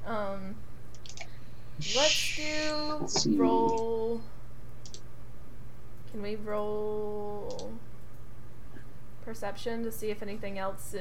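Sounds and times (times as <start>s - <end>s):
low steady hum: 0.0s - 10.9s
soft crisp mouse clicks: 0.9s - 1.3s, 4.8s - 5.1s, 7.4s - 8.2s
speech: 1.8s - 4.3s, 6.2s - 7.8s, 9.3s - 10.9s
person murmuring: 3.0s - 3.8s.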